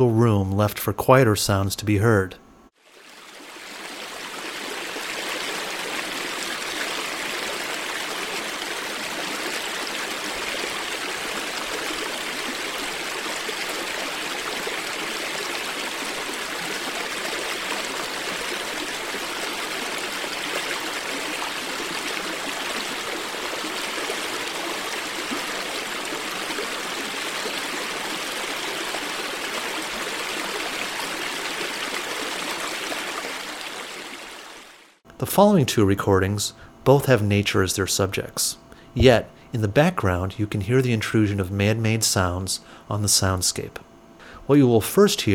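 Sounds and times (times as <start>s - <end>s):
speech: 0.0s - 2.4s, 35.4s - 43.9s, 44.5s - 45.3s
alpine stream flowing out of a meadow in California's Sierra Mountains: 2.8s - 35.0s.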